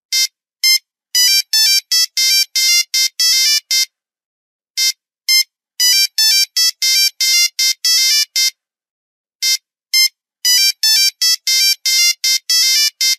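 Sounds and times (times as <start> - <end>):
Nokia 3310 old classic mobile phone sound: 0.1 - 4.0, 4.8 - 8.6, 9.4 - 13.1.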